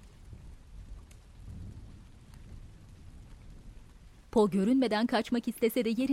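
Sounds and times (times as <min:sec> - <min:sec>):
deep continuous rumble of thunder: 0:00.0 - 0:04.3
rain dripping from a ceiling: 0:00.0 - 0:06.1
speech: 0:04.4 - 0:06.1.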